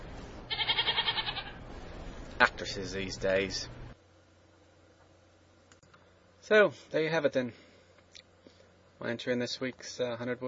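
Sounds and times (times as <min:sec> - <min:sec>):
goat bleating: 0:00.5 - 0:01.6
speech: 0:02.4 - 0:03.8, 0:06.5 - 0:07.6, 0:09.0 - 0:10.4.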